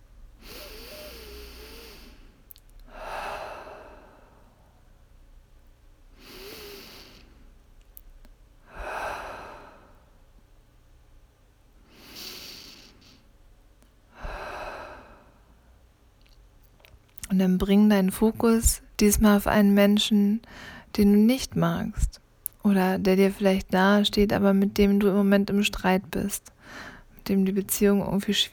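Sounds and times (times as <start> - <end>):
deep slow breathing during a guided meditation: 0.4 - 4.9, 6.1 - 7.6, 8.6 - 10.2, 14.1 - 15.8, 20.4 - 20.9
speech: 17.4 - 28.5.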